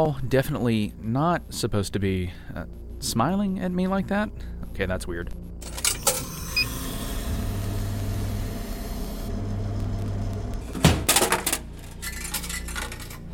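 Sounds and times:
speech: 0:00.0 - 0:05.4
vending machine motor humming: 0:05.6 - 0:13.3.

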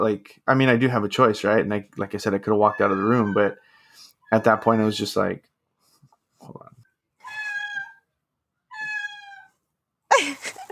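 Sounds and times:
speech: 0:00.0 - 0:05.5, 0:06.4 - 0:06.8
pet cat meowing: 0:02.6 - 0:03.6, 0:07.2 - 0:08.1, 0:08.7 - 0:09.6.

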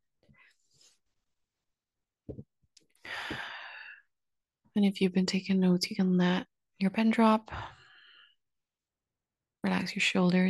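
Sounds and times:
deep breathing during a guided relaxation exercise: 0:03.0 - 0:04.0
speech: 0:04.8 - 0:07.8, 0:09.8 - 0:10.4.

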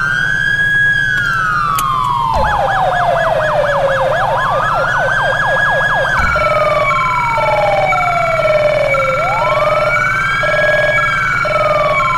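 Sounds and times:
electronic police siren from a siren controller: 0:00.0 - 0:12.1.

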